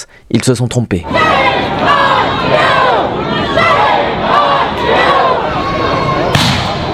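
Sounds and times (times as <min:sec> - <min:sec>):
speech: 0:00.3 - 0:01.9
large crowd of protesters shouting and chanting: 0:01.0 - 0:06.9
sharp thump: 0:06.3 - 0:06.8.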